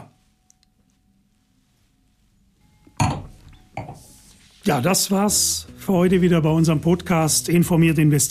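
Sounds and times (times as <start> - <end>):
faint room noise: 0.0 - 8.2
wine glasses clinking in a toast: 2.6 - 4.2
speech: 4.7 - 8.2.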